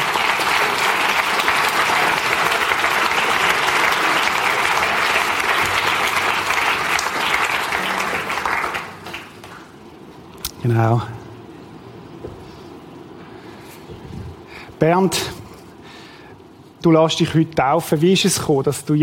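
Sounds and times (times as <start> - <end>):
audience applause at a church baptism service: 0.0 - 9.9
speech: 10.7 - 11.2, 14.8 - 15.4, 16.8 - 19.0.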